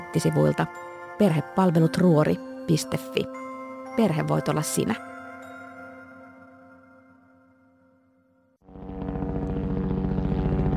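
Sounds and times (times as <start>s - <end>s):
speech: 0.1s - 3.4s, 4.0s - 5.1s
helicopter flying low over power-line clearing work: 8.7s - 10.7s
steady tonal drone: 8.7s - 10.7s.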